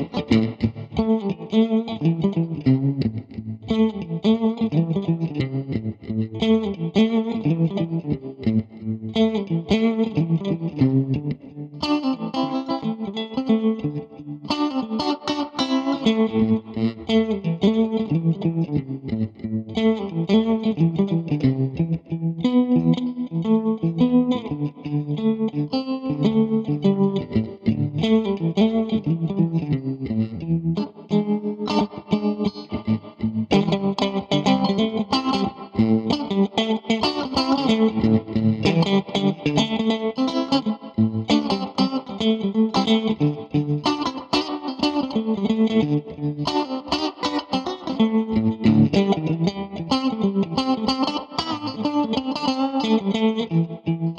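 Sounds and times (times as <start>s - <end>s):
clean Stratocaster electric guitar with chorus shimmer and trailing echo: 0.0s - 54.1s.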